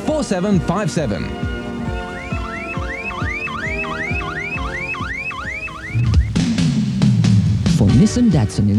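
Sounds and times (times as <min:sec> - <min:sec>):
speech: 0:00.2 - 0:01.5, 0:08.0 - 0:08.7
car alarm whooping: 0:00.2 - 0:06.9.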